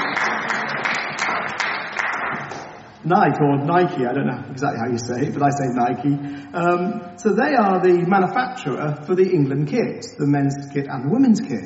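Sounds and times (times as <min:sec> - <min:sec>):
crowd applauding: 0:00.0 - 0:02.8
speech: 0:03.1 - 0:11.6.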